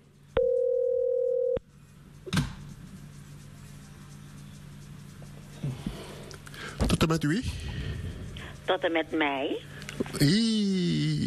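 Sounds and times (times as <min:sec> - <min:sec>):
faint low hum: 0:00.0 - 0:11.2
electronic telephone ringing tone: 0:00.4 - 0:01.6
speech: 0:07.0 - 0:07.8, 0:08.7 - 0:11.2.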